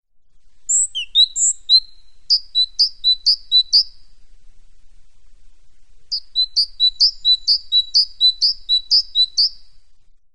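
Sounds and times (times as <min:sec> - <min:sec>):
great tit Parus major song: 0:00.7 - 0:04.0, 0:06.1 - 0:09.7.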